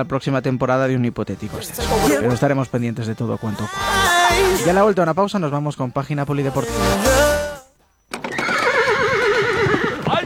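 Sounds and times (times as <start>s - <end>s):
speech: 0.0s - 7.5s
horse whinnying: 8.1s - 10.2s.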